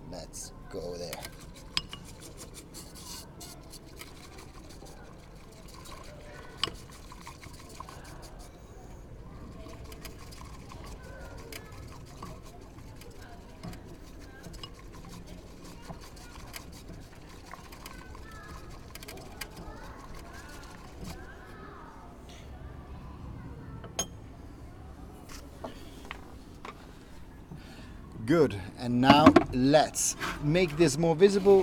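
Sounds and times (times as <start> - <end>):
speech: 0.3 - 1.4, 28.3 - 31.6
utensils clinking: 1.0 - 8.5, 9.5 - 21.3
water pouring into a small vessel for matcha: 3.6 - 21.4.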